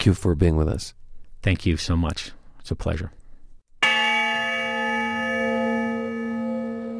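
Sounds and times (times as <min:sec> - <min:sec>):
speech: 0:00.0 - 0:03.2
honor bell tolling: 0:03.8 - 0:06.9.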